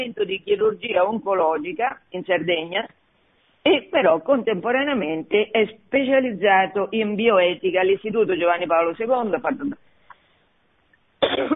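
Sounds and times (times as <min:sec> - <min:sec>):
speech: 0:00.0 - 0:03.0, 0:03.6 - 0:09.8
faint small noises: 0:00.0 - 0:11.5
person coughing: 0:11.2 - 0:11.5.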